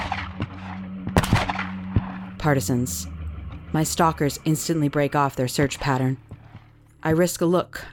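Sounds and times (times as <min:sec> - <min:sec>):
distant gunshot cracks: 0:00.0 - 0:02.2
low steady hum: 0:00.0 - 0:07.9
speech: 0:02.4 - 0:06.4, 0:07.0 - 0:07.9.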